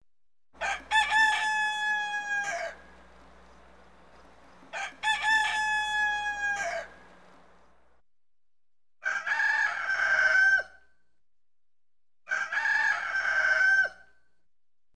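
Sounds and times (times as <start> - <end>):
rooster crowing: 0.6 - 7.6, 9.0 - 10.7, 12.3 - 14.0.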